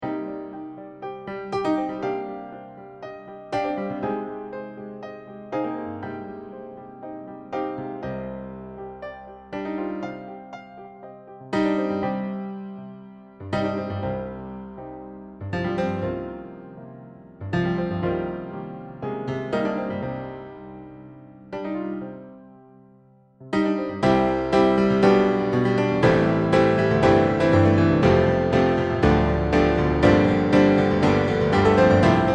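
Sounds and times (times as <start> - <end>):
piano song: 0.0 - 32.3.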